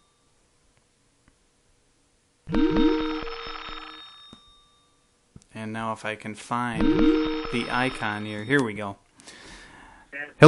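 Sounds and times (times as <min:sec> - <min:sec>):
electronic phone ringtone with rising chirps and bell-like tones: 0:02.5 - 0:05.0, 0:06.8 - 0:08.5
speech: 0:05.8 - 0:09.4.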